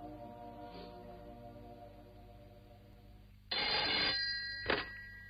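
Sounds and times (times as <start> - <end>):
telephone ringing: 3.5 - 5.2.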